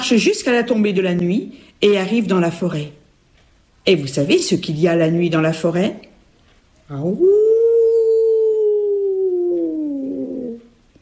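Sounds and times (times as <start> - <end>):
speech: 0.1 - 3.0, 3.8 - 6.1, 6.9 - 7.4
wolf howling in a forest at night: 7.1 - 10.8.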